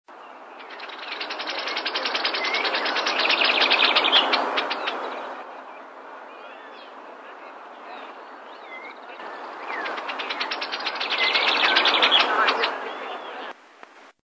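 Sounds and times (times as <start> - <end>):
shiny cowbird voice: 0.6 - 5.3, 8.6 - 12.8.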